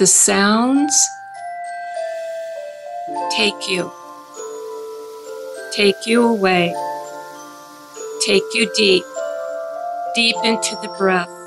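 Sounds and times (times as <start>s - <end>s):
speech: 0.0s - 1.2s, 3.1s - 4.0s, 5.7s - 6.9s, 8.2s - 9.2s, 10.1s - 11.4s
music box bells: 0.4s - 11.4s
bowls ringing: 0.6s - 11.4s.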